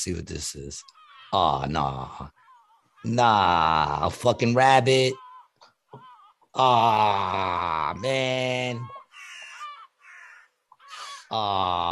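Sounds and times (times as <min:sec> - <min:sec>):
speech: 0:00.0 - 0:02.4, 0:03.0 - 0:05.2, 0:06.6 - 0:09.0, 0:11.3 - 0:11.9
seagull squawking in a played video: 0:08.8 - 0:11.2.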